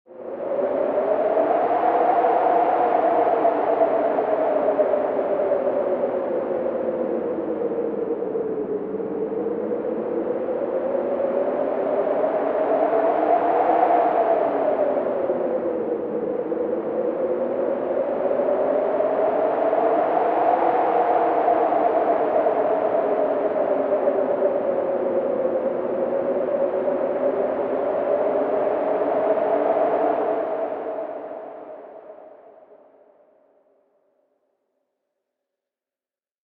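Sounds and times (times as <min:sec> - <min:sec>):
wind blowing: 0:00.1 - 0:32.3.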